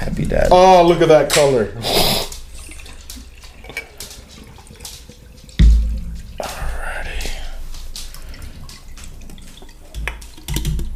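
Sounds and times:
speech: 0.0 - 2.0
hard seltzer pouring into a glass: 2.4 - 10.9
low thump: 5.6 - 6.3.

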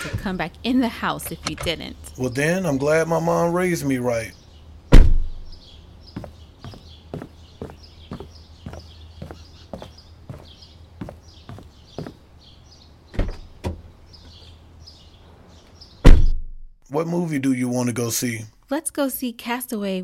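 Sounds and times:
speech: 0.0 - 4.4, 17.0 - 20.0
door opening with a thump: 4.9 - 5.3, 13.1 - 13.8, 16.0 - 16.4
sharp knock: 4.9 - 5.4, 16.1 - 16.6.

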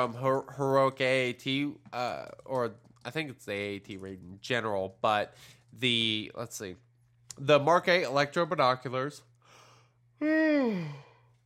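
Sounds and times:
speech: 0.0 - 6.8, 7.4 - 9.3, 10.2 - 11.1
person yawning: 10.2 - 11.2.

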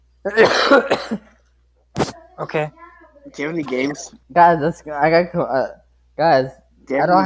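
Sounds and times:
speech: 0.2 - 1.3, 2.4 - 7.2
person coughing after drinking something: 0.3 - 1.3.

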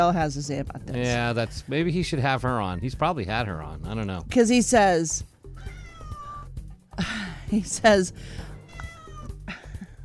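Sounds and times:
speech: 0.0 - 5.7, 7.0 - 8.5
cat meowing at home: 5.5 - 6.6, 8.2 - 9.8
low rumble: 7.0 - 10.0.

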